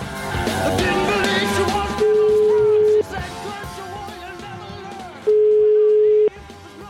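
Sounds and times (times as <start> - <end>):
busy noisy background: 0.0 - 6.8
telephone call tones while calling back a bar: 2.0 - 3.0, 5.3 - 6.3.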